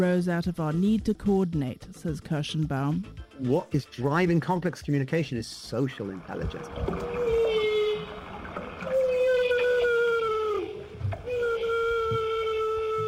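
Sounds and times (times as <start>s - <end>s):
speech: 0.0s - 7.2s
low watery rumble: 5.6s - 13.0s
humpback whales vocalizing during bubble-net feeding: 6.2s - 13.0s.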